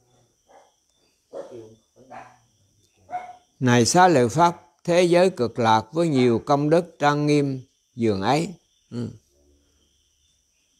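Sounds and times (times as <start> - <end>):
insects chirping: 0.0 - 10.7
dog barking: 0.4 - 3.5
speech: 3.6 - 9.2.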